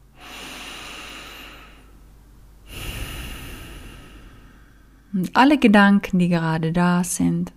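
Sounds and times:
deep breath during a guided relaxation: 0:00.0 - 0:02.0, 0:02.6 - 0:05.2
speech: 0:05.1 - 0:07.5.

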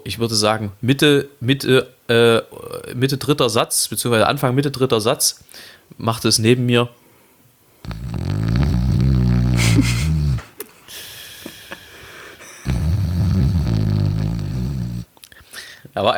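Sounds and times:
speech: 0:00.1 - 0:07.0, 0:09.8 - 0:10.0, 0:16.0 - 0:16.1
breathy noise: 0:07.8 - 0:15.9
voice loudly imitating snoring: 0:07.9 - 0:10.5, 0:12.4 - 0:15.1.

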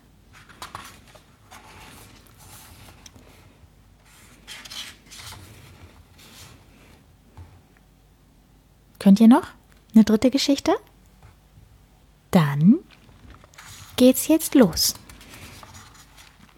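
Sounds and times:
pages of a book turning: 0:00.3 - 0:06.7, 0:12.9 - 0:16.5
speech: 0:09.1 - 0:10.9, 0:14.0 - 0:15.0.

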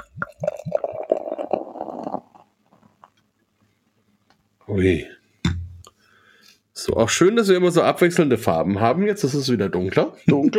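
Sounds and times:
liquid glugging poured from a full crown-capped bottle: 0:00.0 - 0:03.2
speech: 0:04.7 - 0:05.2, 0:06.9 - 0:10.5.

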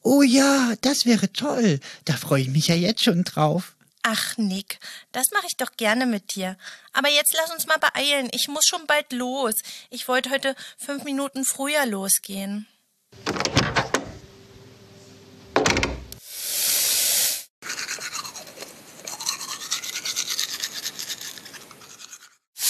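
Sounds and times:
speech: 0:00.0 - 0:13.8
teeth brushing: 0:17.6 - 0:22.5.

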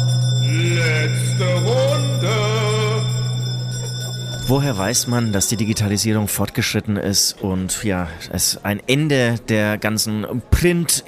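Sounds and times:
single bell ringing: 0:00.0 - 0:06.0
speech: 0:04.5 - 0:11.0.

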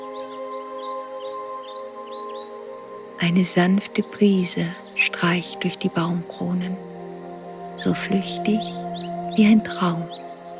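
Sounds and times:
bright birdsong trills and chirps from the trees: 0:00.0 - 0:10.5
speech: 0:03.2 - 0:06.9, 0:07.8 - 0:10.2
steady soft tonal drone: 0:05.0 - 0:10.5.

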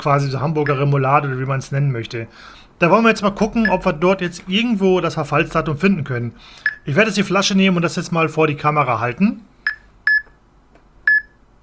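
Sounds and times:
speech: 0:00.0 - 0:09.5
handheld device beeping while scanning a bottle for its expiry date: 0:03.4 - 0:04.0, 0:06.6 - 0:06.9, 0:11.1 - 0:11.4.

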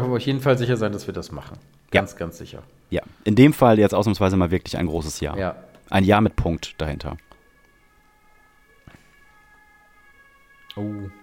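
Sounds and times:
speech: 0:00.2 - 0:07.3, 0:10.8 - 0:11.2
faint emergency vehicle siren passing outside: 0:06.7 - 0:11.2.

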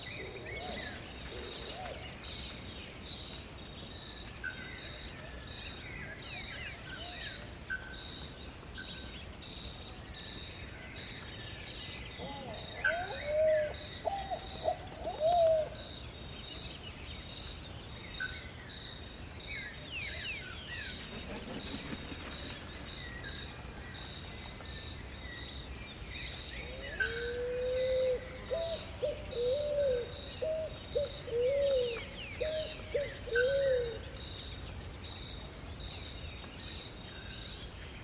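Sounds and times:
steady insect hiss in a Brazilian rainforest: 0:00.0 - 0:38.0.

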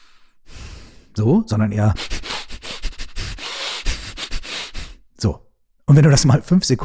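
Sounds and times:
rapid chaotic breathing in and out through the nose during a breathing exercise: 0:00.0 - 0:01.2, 0:01.9 - 0:05.1
speech: 0:01.2 - 0:02.1, 0:05.2 - 0:06.8.

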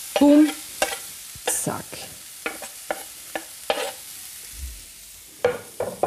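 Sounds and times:
diced onion frying with mushrooms in a pan: 0:00.0 - 0:06.0
speech: 0:00.2 - 0:00.6
utensil scraping a pan while stirring: 0:00.2 - 0:01.6, 0:02.4 - 0:04.1.

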